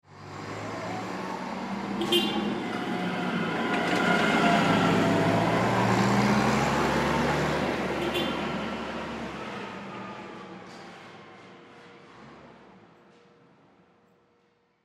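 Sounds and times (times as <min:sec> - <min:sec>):
forklift passing by: 0:00.1 - 0:12.6
small forklift horn honks: 0:08.0 - 0:08.5.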